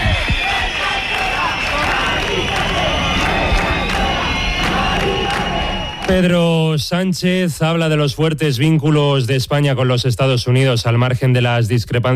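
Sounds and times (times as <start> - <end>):
protest crowd shouting and cheering at a housing eviction: 0.0 - 6.8
speech: 6.1 - 12.1.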